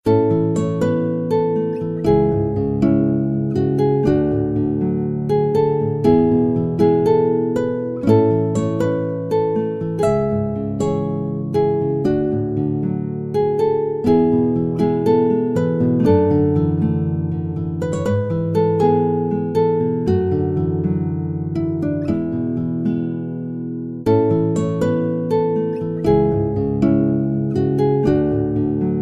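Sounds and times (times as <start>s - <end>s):
romantic guitar music: 0.0s - 29.0s.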